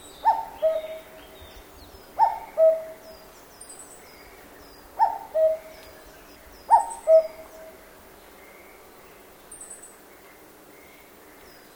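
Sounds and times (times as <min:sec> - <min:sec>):
cuckoo calling in a forest in Japan: 0:00.0 - 0:01.5, 0:02.2 - 0:03.2, 0:05.0 - 0:05.9, 0:06.7 - 0:07.8.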